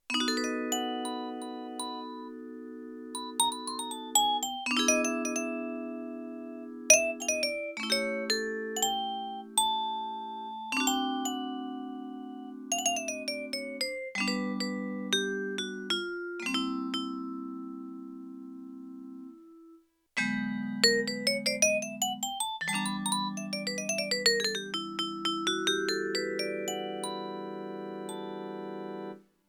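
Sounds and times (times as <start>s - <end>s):
sampled vibraphone: 0.1s - 2.6s, 3.2s - 18.2s, 20.2s - 29.2s.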